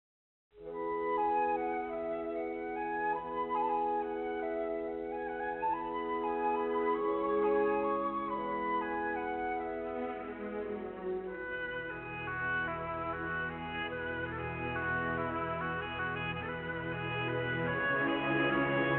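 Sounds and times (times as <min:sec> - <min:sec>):
hold music: 0:00.6 - 0:18.9.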